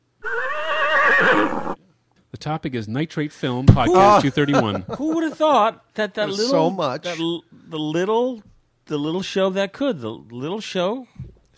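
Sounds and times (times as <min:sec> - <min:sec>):
horse neighing: 0:00.2 - 0:01.8
speech: 0:02.4 - 0:11.5
laughter: 0:03.7 - 0:07.2.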